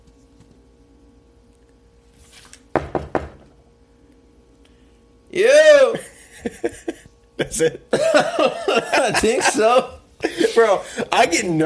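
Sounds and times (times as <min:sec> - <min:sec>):
knocks on a door: 0:02.7 - 0:03.5
speech: 0:05.3 - 0:05.5, 0:07.6 - 0:10.0, 0:10.6 - 0:11.6
laughter: 0:06.0 - 0:11.6.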